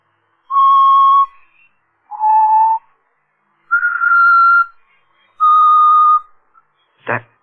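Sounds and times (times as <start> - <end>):
person whistling a slow tune read from sheet music: 0.5 - 2.9, 3.7 - 4.8, 5.4 - 6.4.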